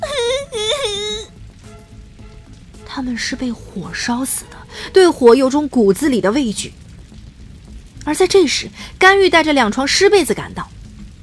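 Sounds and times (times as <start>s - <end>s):
hoarse despairing crying from inside a room behind a shut door during a fire: 0.0s - 1.3s
speech: 3.0s - 6.8s, 8.0s - 10.7s.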